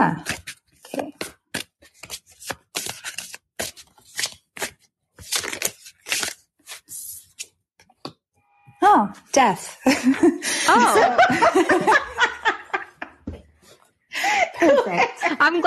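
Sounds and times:
speech: 0.0 - 0.4, 9.4 - 12.1, 15.5 - 15.6
playing cards shuffled and drawn for a reading: 0.3 - 6.8
laughter: 9.8 - 13.2, 14.2 - 15.6.

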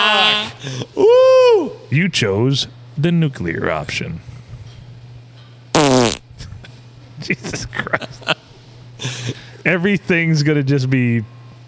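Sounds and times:
speech: 0.4 - 1.1, 1.9 - 4.3, 7.2 - 8.0, 9.6 - 11.4
fart: 5.8 - 6.2.

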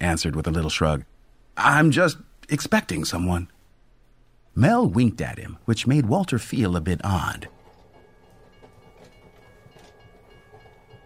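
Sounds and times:
speech: 0.0 - 3.5, 4.6 - 7.6
train rolling slowly along rails: 6.9 - 11.0
train wheel clicks: 7.0 - 11.0
faint high metallic whine: 7.2 - 11.0.

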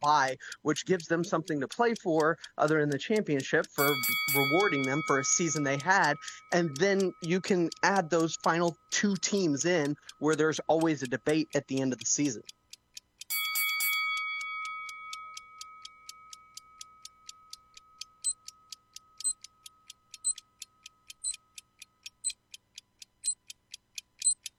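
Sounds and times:
speech: 0.0 - 12.6
rapid ticking: 0.0 - 13.1, 16.3 - 24.5
bell ringing: 3.8 - 6.9, 13.3 - 17.5.

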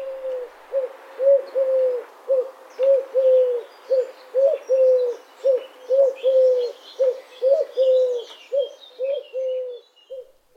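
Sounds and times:
Eurasian collared dove giving three-syllable courtship call: 0.0 - 10.5
small birds chirping: 2.4 - 10.4.

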